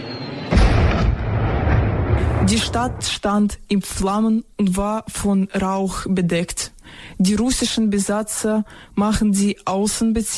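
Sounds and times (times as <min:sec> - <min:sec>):
artillery shell striking during a wartime bombardment of a city's outskirts: 0:00.4 - 0:03.2
speech: 0:02.5 - 0:10.3.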